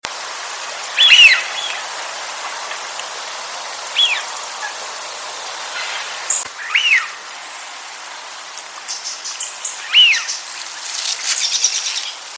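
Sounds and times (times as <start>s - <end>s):
steady hiss: 0.0s - 12.3s
wigeon giving clear whistled calls: 1.0s - 1.9s, 3.9s - 4.8s, 5.8s - 7.1s, 9.0s - 10.4s.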